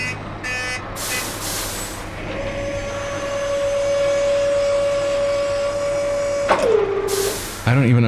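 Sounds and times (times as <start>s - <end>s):
large truck with pop-up clothing shop rumbling and droning: 0.0s - 8.0s
truck brake squeal: 0.0s - 8.0s
truck air brake hiss: 1.0s - 2.2s, 7.0s - 7.8s
speech: 7.7s - 8.0s.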